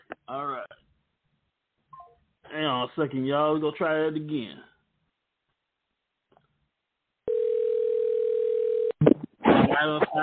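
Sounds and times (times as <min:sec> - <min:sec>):
speech: 0:00.3 - 0:00.8, 0:02.5 - 0:04.7, 0:09.8 - 0:10.2
telephone dial tone while placing a call: 0:07.3 - 0:09.0.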